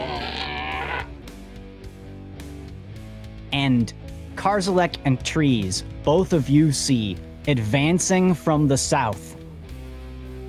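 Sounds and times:
frog croaking from a pulsating throat sac: 0:00.0 - 0:01.1
speech: 0:03.6 - 0:09.4.

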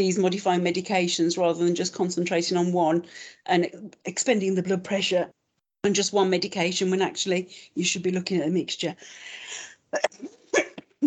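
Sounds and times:
speech: 0:00.0 - 0:11.0
raspy breath: 0:09.0 - 0:09.8
person coughing: 0:10.0 - 0:11.0.

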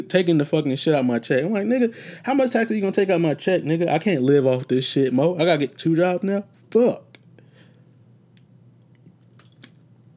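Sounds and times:
speech: 0:00.0 - 0:07.1
low steady hum: 0:00.0 - 0:10.1
person sipping water: 0:08.9 - 0:09.9
wet mouth clicks: 0:08.9 - 0:09.9.

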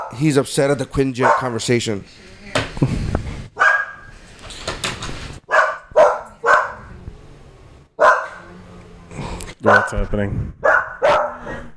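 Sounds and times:
speech: 0:00.1 - 0:03.2, 0:09.9 - 0:10.6
dog barking frantically at lawn mowing: 0:01.2 - 0:01.6, 0:03.6 - 0:04.1, 0:05.5 - 0:06.9, 0:08.0 - 0:08.5, 0:09.6 - 0:10.0, 0:10.6 - 0:11.7.

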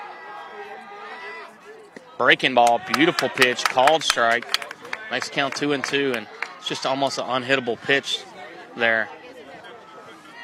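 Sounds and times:
speech: 0:02.2 - 0:09.2
baseball fans cheering and clapping: 0:02.6 - 0:07.1.

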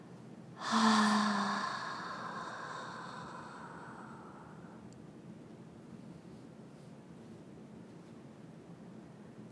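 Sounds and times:
slow deep exhale through the mouth during a guided breathing exercise: 0:00.6 - 0:04.8.

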